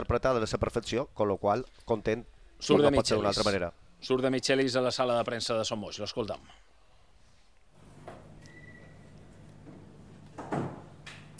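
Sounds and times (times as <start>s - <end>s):
speech: 0.0s - 6.7s
faint creaks and shuffles: 6.5s - 11.3s
steady low hum: 7.7s - 11.3s
press room door swinging shut: 7.8s - 11.3s.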